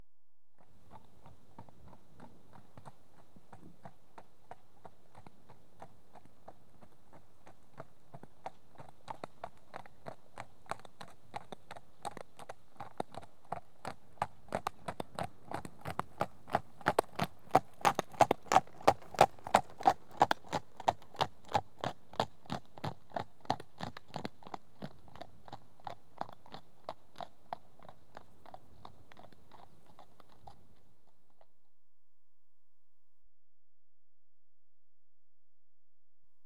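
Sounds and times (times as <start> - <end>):
horse trotting past on tarmac: 0.6 - 31.5.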